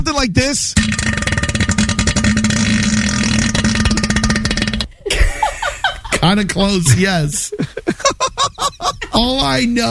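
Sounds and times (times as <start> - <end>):
speech: 0.1 - 1.4, 6.2 - 8.1, 9.2 - 9.8
person blowing a raspberry imitating a deep bassy fart: 0.8 - 5.1
laughter: 5.1 - 9.3.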